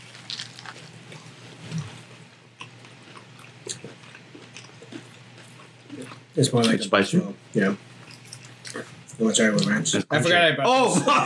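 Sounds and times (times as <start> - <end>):
crunchy bites of a spicy sandwich: 0.0 - 6.3
soft wet chewing of a spicy sandwich: 0.0 - 6.8, 8.0 - 9.8
speech: 6.4 - 7.9, 9.2 - 11.2
laughter: 10.7 - 11.2.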